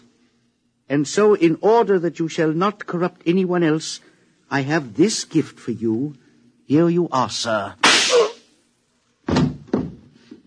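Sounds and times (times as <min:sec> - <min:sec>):
speech: 0:00.9 - 0:07.8
single sharp gunshot: 0:07.8 - 0:08.4.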